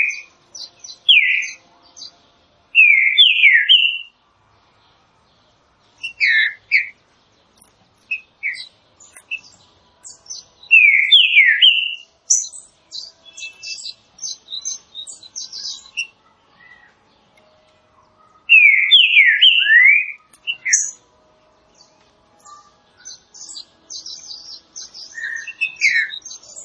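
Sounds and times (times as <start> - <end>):
green-winged saltator song: 0.0 - 1.6, 2.8 - 4.1, 8.1 - 16.9, 18.5 - 21.0, 22.4 - 26.6.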